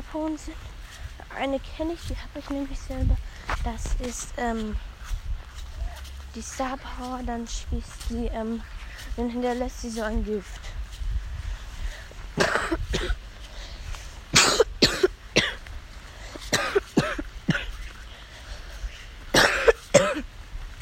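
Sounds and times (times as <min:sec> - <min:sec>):
speech: 0:00.1 - 0:00.7, 0:01.3 - 0:05.2, 0:06.3 - 0:10.8
person coughing in short harsh bursts: 0:12.4 - 0:13.2, 0:14.3 - 0:15.7, 0:16.4 - 0:17.8, 0:19.3 - 0:20.2.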